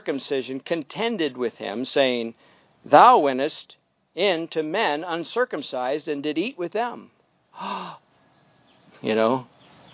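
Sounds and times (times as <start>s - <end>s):
speech: 0.0s - 8.0s, 9.0s - 9.9s
dramatic gasp of shock: 7.6s - 8.1s.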